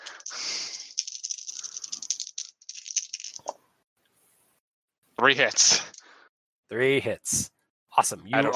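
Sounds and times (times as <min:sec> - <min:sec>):
three dice rattling and clattering: 0:00.0 - 0:03.6, 0:05.5 - 0:06.0
speech: 0:05.2 - 0:05.9, 0:06.7 - 0:08.5.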